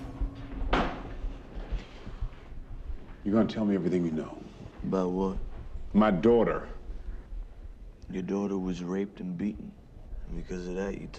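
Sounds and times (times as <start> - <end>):
low quiet room rumble: 0.0 - 11.1
door thud or click: 0.4 - 1.3
speech: 3.2 - 6.8, 8.1 - 11.1.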